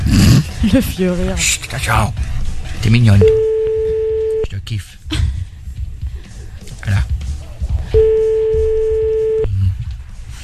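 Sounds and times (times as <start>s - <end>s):
speech: 0.1s - 3.5s, 4.7s - 5.3s
steady mid-pitched telephone tone of a call failing to ring through: 3.2s - 4.5s, 8.0s - 9.5s.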